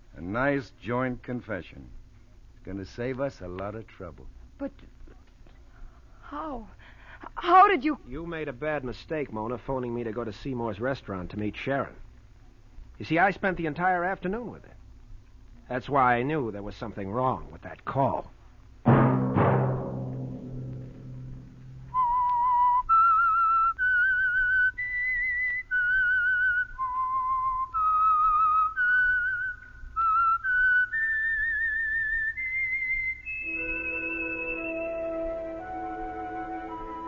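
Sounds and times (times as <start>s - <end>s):
speech: 0.2s - 2.0s, 2.6s - 5.0s, 6.3s - 12.0s, 13.0s - 14.8s, 15.7s - 19.0s
booming musical chord: 18.9s - 22.0s
whistled theme melody of a radio program: 21.9s - 37.0s
sustained orchestral chord: 33.5s - 37.0s.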